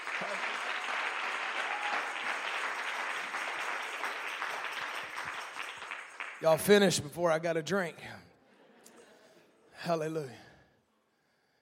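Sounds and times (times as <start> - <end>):
audience clapping: 0.0 - 7.1
speech: 6.4 - 8.2, 9.8 - 10.4.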